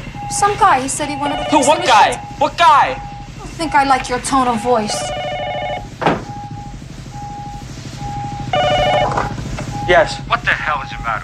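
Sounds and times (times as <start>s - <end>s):
low constant hum: 0.0s - 11.2s
thin steady beeps: 0.1s - 9.1s, 9.7s - 10.4s
telephone ringing in short bright electronic bursts: 0.2s - 6.8s, 8.2s - 10.0s
speech: 0.3s - 5.2s, 9.9s - 11.2s
brief thump: 6.0s - 6.3s.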